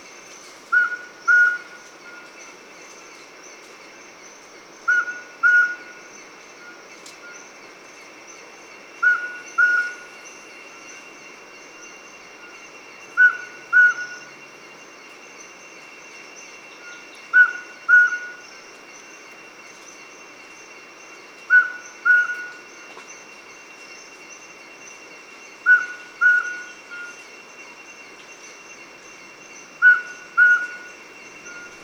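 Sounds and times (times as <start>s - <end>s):
Mountain Scops Owl Otus spilocephalus call: 0.7s - 2.2s, 4.9s - 5.9s, 9.0s - 10.1s, 13.2s - 14.3s, 16.8s - 18.4s, 21.5s - 22.6s, 25.6s - 27.2s, 29.8s - 31.8s.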